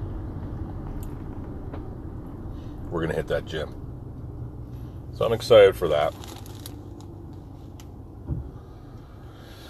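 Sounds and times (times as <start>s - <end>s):
car interior rumble while driving in traffic: 0.0s - 9.6s
speech: 2.9s - 3.8s, 5.2s - 6.4s
soft thump: 8.2s - 8.6s.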